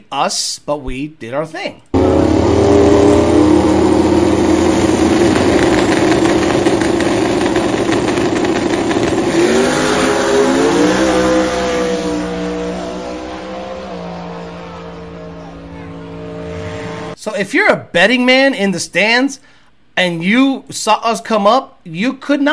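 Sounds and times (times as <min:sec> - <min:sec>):
speech: 0:00.1 - 0:03.8, 0:17.4 - 0:22.5
Street Fighter class drag race car with 6R80 transmission roaring while accelerating: 0:02.0 - 0:17.2.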